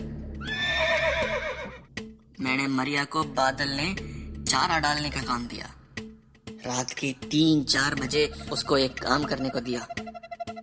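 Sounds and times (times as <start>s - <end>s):
horse whinnying: 0.4s - 1.9s
speech: 2.6s - 5.8s, 6.6s - 10.0s.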